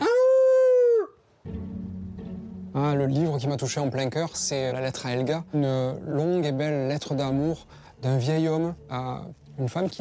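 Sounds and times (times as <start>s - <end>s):
person imitating a wolf howl: 0.0s - 1.2s
speech: 2.8s - 9.9s.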